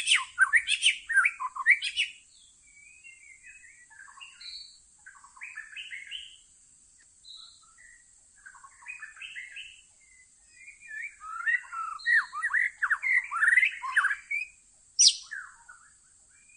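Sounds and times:
white-rumped shama song used as lure: 0:00.0 - 0:02.2, 0:10.9 - 0:15.5.

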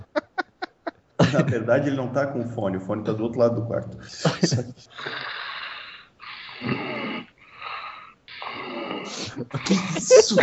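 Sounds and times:
laughter: 0:00.0 - 0:01.7, 0:04.0 - 0:05.1, 0:09.1 - 0:10.4
speech: 0:01.3 - 0:05.4, 0:09.4 - 0:10.4
loud raspy snoring: 0:05.0 - 0:10.1.

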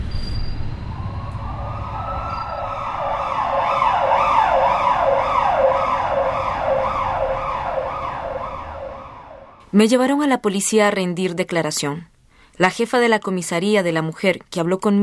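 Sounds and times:
low traffic rumble: 0:00.0 - 0:09.6
ambulance siren wailing: 0:00.8 - 0:09.6
speech: 0:09.7 - 0:15.0.

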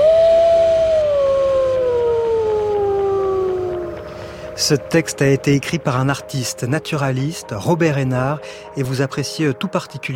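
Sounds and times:
wolves howling in icy air: 0:00.0 - 0:04.1
speech: 0:04.6 - 0:10.1.

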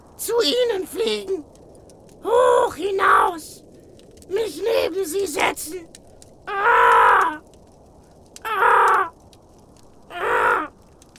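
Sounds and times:
speech: 0:00.2 - 0:01.6, 0:02.2 - 0:03.6, 0:04.3 - 0:06.9
ravens cawing loudly: 0:06.5 - 0:07.5, 0:08.4 - 0:09.2, 0:10.0 - 0:10.8.

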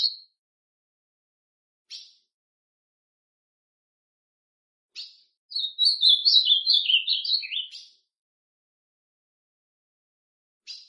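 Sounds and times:
ultramarine grosbeak singing: 0:00.0 - 0:00.2, 0:05.0 - 0:08.0.

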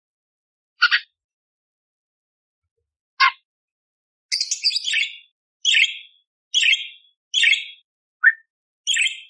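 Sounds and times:
budgerigar chirping: 0:04.3 - 0:09.2.

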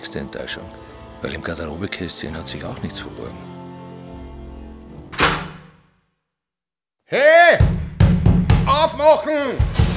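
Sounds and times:
speech: 0:00.0 - 0:03.6, 0:07.1 - 0:07.8, 0:09.0 - 0:09.8
shower cabin door being locked from outside: 0:05.1 - 0:05.9.

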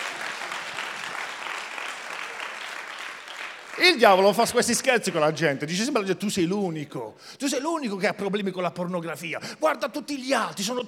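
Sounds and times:
church congregation applauding with many hands clapping: 0:00.0 - 0:05.4
speech: 0:03.8 - 0:10.8.

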